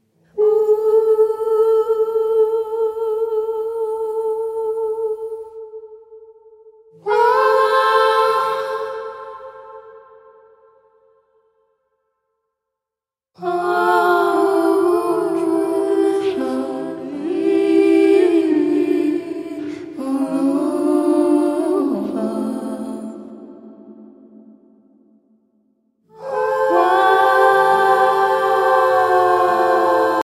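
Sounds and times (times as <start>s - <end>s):
spooky choral vocal: 0.0s - 11.2s, 13.4s - 25.5s, 26.1s - 30.2s.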